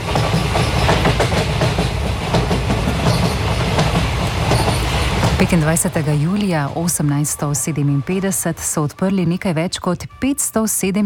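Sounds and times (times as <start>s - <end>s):
train wheels clattering along railway tracks: 0.0s - 7.0s
speech: 5.4s - 11.0s.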